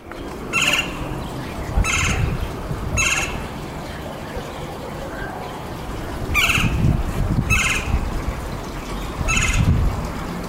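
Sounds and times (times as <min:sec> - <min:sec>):
steady outdoor rumble: 0:00.0 - 0:10.4
woodpecker squawking: 0:00.5 - 0:06.9, 0:07.5 - 0:08.1, 0:09.2 - 0:09.8.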